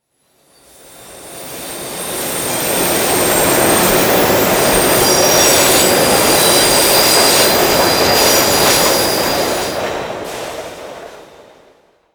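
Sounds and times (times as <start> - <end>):
harvester brakes squealing: 1.3 - 9.7.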